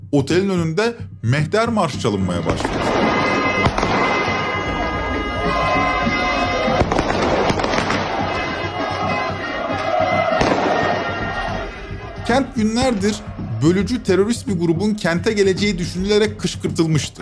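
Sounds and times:
speech: 0.1s - 3.4s, 12.3s - 17.1s
fireworks and sound bombs exploding: 2.6s - 8.6s, 10.3s - 11.0s
crowd: 2.9s - 13.5s.

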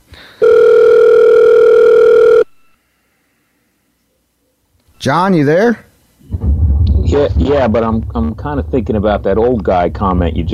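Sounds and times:
telephone call dialing tone: 0.4s - 2.8s
speech: 5.0s - 6.5s, 7.1s - 10.5s.

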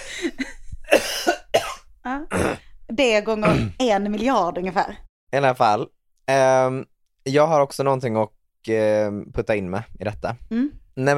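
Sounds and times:
harsh coughs: 0.8s - 2.6s, 3.4s - 3.8s
speech: 3.0s - 11.1s.

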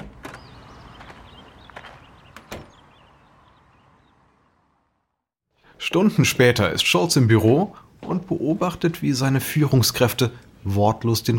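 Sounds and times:
shop door lock clicks and knocks: 0.0s - 1.2s, 1.8s - 2.9s
shop door closing clunk: 0.0s - 3.2s
speech: 5.8s - 11.3s.

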